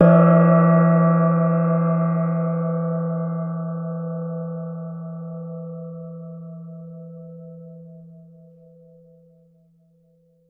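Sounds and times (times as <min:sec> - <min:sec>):
small gong: 0:00.0 - 0:09.9.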